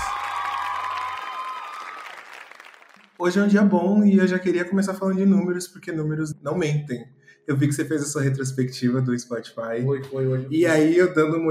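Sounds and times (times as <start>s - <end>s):
crowd applauding for a rap and R&B singer: 0.0s - 3.2s
speech: 3.2s - 11.5s.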